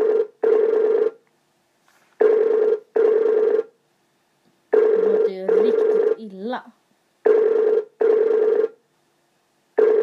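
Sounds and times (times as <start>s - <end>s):
telephone ringing unanswered in a double-ring pattern: 0.0s - 1.2s, 2.2s - 3.7s, 4.7s - 6.2s, 7.3s - 8.8s, 9.8s - 10.0s
speech: 6.6s - 6.8s.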